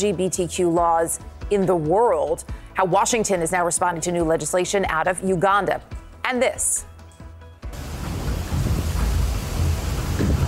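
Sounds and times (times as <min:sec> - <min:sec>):
speech: 0:00.0 - 0:06.9
deep rumbling: 0:07.7 - 0:10.4
pouring rain on a cruise ship: 0:07.7 - 0:10.4
storm wind roaring on a cruise ship in rough waters off Charleston, South Carolina: 0:07.7 - 0:10.4.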